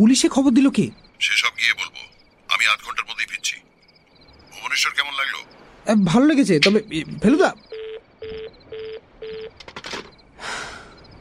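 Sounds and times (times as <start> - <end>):
speech: 0.0 - 3.6, 4.6 - 9.0
telephone line tone after a call is hung up: 7.0 - 9.6.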